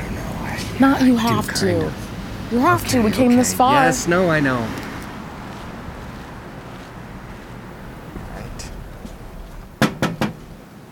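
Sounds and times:
faint breezy rumble outdoors: 0.0 - 10.9
speech: 0.8 - 4.8
knocking on a front door: 9.8 - 10.5.

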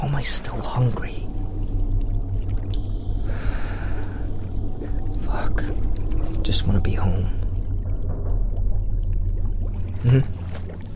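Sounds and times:
deep low rumble: 0.0 - 10.9
water bubbling and gurgling in a cave sea hole: 0.0 - 10.9
speech: 0.1 - 1.2, 5.4 - 7.4, 10.0 - 10.4.

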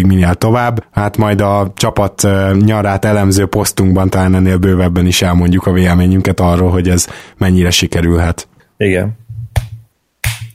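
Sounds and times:
speech: 0.0 - 9.2
self high-five hand slaps: 9.4 - 10.5.

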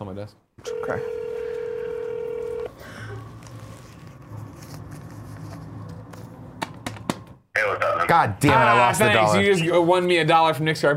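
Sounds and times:
speech: 0.0 - 1.2, 7.6 - 10.9
telephone ringing tone: 0.6 - 2.7.

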